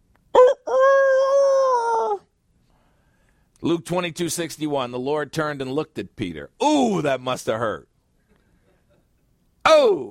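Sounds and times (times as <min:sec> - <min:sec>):
rooster crowing: 0:00.4 - 0:02.2
speech: 0:03.6 - 0:07.9.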